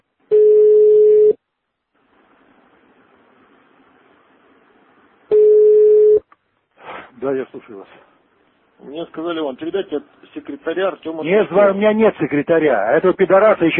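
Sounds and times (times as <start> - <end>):
ringback tone on a telephone line: 0.3 - 1.4, 5.3 - 6.2
speech: 7.2 - 8.1, 8.8 - 13.7.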